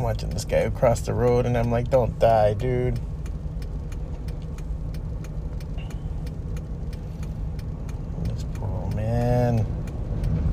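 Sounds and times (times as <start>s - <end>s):
faint ticking clicks: 0.0s - 10.5s
road traffic rumbling: 0.0s - 10.5s
speech: 0.1s - 3.1s.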